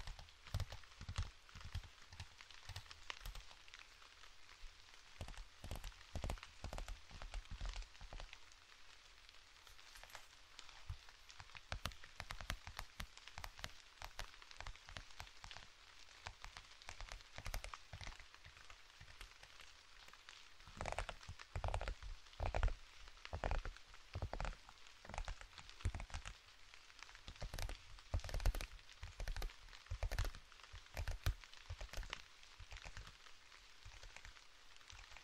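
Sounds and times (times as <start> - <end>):
sharp taps and scratchy clicks: 0.0 - 3.5, 5.2 - 8.3, 10.9 - 15.6, 16.3 - 18.2, 23.3 - 26.4, 27.3 - 33.2
steady rain: 0.0 - 35.2.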